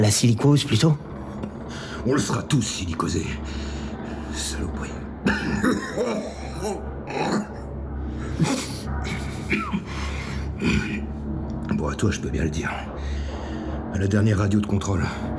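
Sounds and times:
speech: 0.0s - 1.1s, 1.7s - 3.7s, 4.4s - 6.9s, 11.8s - 13.0s, 14.0s - 15.3s
steady low hum: 0.0s - 15.3s
rasping throat clearing: 5.2s - 7.6s, 8.3s - 10.0s, 10.6s - 11.1s
heavy harsh coughing: 5.2s - 11.1s.

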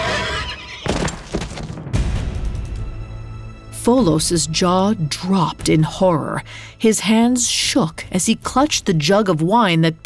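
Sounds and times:
horse neighing in agony: 0.0s - 0.9s
heavy crashing and thudding impacts: 0.9s - 2.9s
speech: 3.9s - 10.0s.

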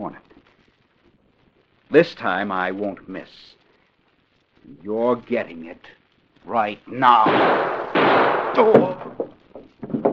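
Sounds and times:
speech: 0.0s - 0.3s, 1.9s - 3.6s, 4.7s - 9.1s
loud burst of harsh noise: 7.0s - 9.3s
gunshot fired from a bedroom: 7.2s - 9.3s.

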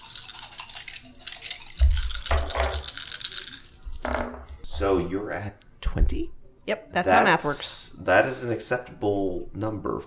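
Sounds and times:
dice rattling and clattering across a hard surface: 1.7s - 4.4s
speech: 4.8s - 10.0s.

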